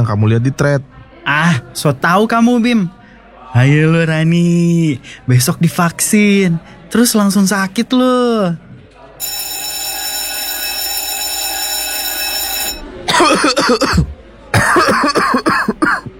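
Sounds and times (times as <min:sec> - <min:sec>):
speech: 0:00.0 - 0:09.3, 0:13.2 - 0:14.1
steady electronic ringing tone: 0:09.2 - 0:13.0
loud harsh coughing: 0:13.1 - 0:16.1.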